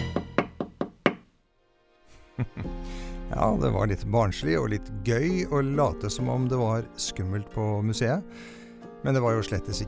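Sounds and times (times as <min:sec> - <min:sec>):
sharp knocking on a door: 0:00.2 - 0:01.3
laughter: 0:02.4 - 0:02.7
speech: 0:02.4 - 0:09.8.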